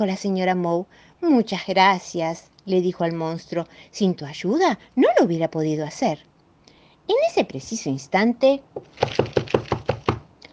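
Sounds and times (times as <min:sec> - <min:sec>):
speech: 0:00.0 - 0:06.3, 0:07.1 - 0:09.4
hollow knocks on a door: 0:08.8 - 0:10.3.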